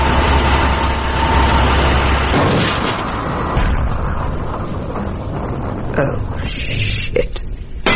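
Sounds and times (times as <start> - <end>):
spaceship engines roaring as they power up: 0.0 - 6.4
deep low rumble: 0.0 - 7.8
speech: 6.0 - 6.2.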